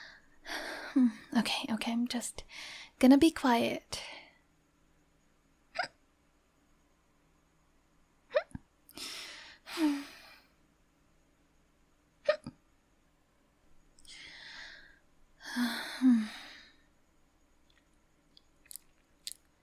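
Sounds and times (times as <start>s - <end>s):
speech: 1.0s - 4.2s, 9.8s - 10.0s
hiccups: 5.7s - 6.0s, 8.3s - 8.6s, 12.2s - 12.6s.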